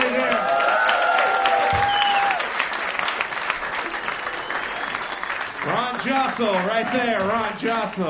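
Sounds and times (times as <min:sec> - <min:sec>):
audience cheering: 0:00.0 - 0:08.0
live comedy audience applause: 0:00.0 - 0:08.0
audience whistles: 0:01.7 - 0:02.4, 0:04.2 - 0:05.6
speech: 0:06.0 - 0:08.0.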